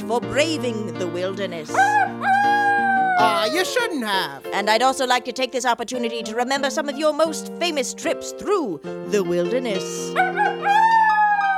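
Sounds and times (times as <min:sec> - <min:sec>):
speech: 0:00.1 - 0:02.6, 0:03.2 - 0:11.0
wolf howling: 0:01.8 - 0:03.7, 0:10.2 - 0:11.5.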